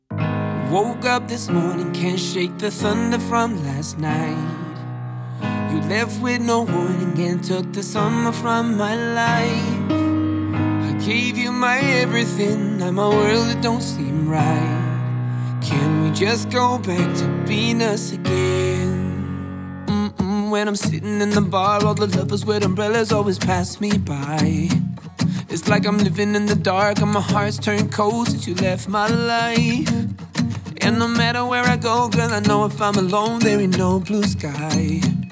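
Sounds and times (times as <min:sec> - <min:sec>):
acoustic version of a song: 0:00.0 - 0:35.3.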